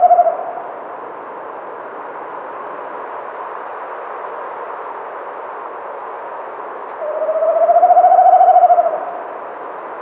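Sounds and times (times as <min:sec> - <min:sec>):
tawny owl hooting: 0:00.0 - 0:00.7, 0:07.0 - 0:09.3.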